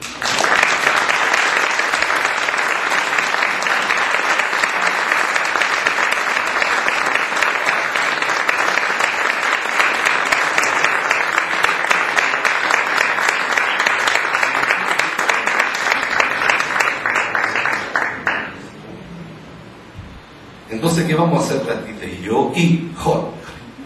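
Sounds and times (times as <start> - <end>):
audience applause at a song concert: 0.0 - 18.8
speech: 21.2 - 23.2.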